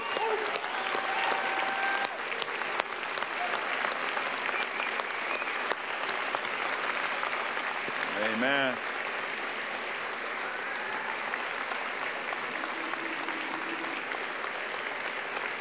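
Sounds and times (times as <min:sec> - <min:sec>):
large audience applauding: 0:00.0 - 0:15.5
speech: 0:08.4 - 0:09.0.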